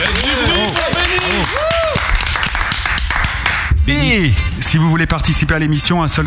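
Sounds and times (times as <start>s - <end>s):
people whooping and cheering: 0.0s - 2.6s
small group clapping and applauding: 0.0s - 3.7s
speech: 3.9s - 6.2s.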